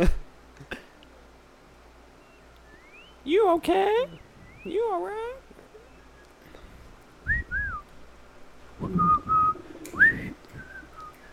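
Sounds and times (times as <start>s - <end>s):
speech: 0.0s - 0.2s, 3.5s - 5.4s
breathy low rumbling: 6.6s - 11.2s
person whistling a short halting melody: 7.3s - 7.8s, 8.8s - 11.3s.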